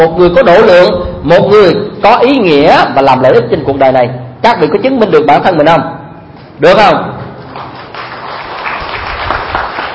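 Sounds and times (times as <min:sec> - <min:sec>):
speech: 0:00.0 - 0:06.0, 0:06.6 - 0:07.2
audience applause at a Buddhist sermon: 0:07.5 - 0:09.9.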